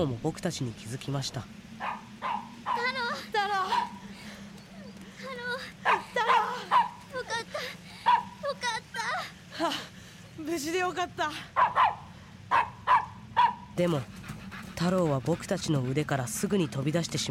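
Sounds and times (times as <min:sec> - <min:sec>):
speech: 0:00.0 - 0:01.6, 0:10.5 - 0:12.6, 0:13.8 - 0:14.2, 0:14.8 - 0:17.3
steady low hum: 0:00.0 - 0:17.3
dog barking excitedly with high yips and yelps: 0:01.8 - 0:04.0, 0:05.8 - 0:07.1, 0:08.0 - 0:08.4, 0:11.6 - 0:13.8.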